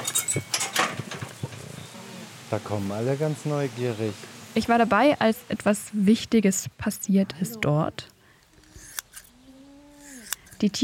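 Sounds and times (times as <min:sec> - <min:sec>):
speech: 0:02.5 - 0:08.1, 0:10.6 - 0:10.8
scissors trimming long hair on a llama or alpaca head: 0:08.6 - 0:09.3, 0:10.0 - 0:10.8.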